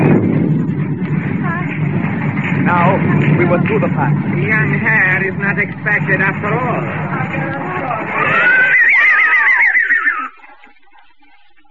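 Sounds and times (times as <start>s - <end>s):
low rumbling: 0.0s - 10.9s
speech: 3.4s - 8.6s
horse of a four-horse caleche neighing: 7.9s - 10.4s.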